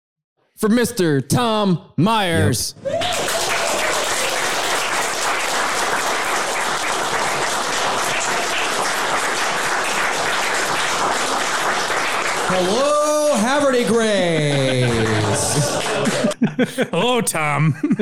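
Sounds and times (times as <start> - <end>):
speech: 0.6 - 3.2, 12.5 - 12.8, 13.8 - 14.5, 16.4 - 17.9
crowd in Haver de Grace applauding a speaker: 2.8 - 16.4
laughter: 13.2 - 17.9.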